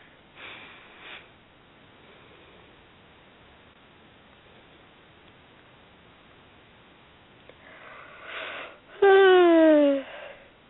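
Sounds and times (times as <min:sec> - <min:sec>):
big voiced yawn from a person: 0:08.9 - 0:10.4.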